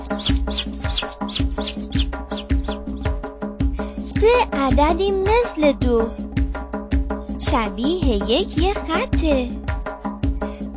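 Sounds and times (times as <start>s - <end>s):
two chicks chirping in a counting song: 0.0s - 3.2s
rhythmic musical backing with a deep bass line: 0.0s - 10.7s
speech: 4.3s - 6.2s, 7.5s - 9.6s.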